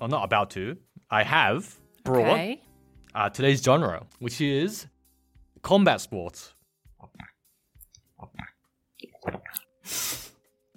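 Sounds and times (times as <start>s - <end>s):
speech: 0.0s - 4.9s, 5.6s - 7.2s, 9.2s - 10.2s
person gulping while drinking wine: 7.0s - 9.8s.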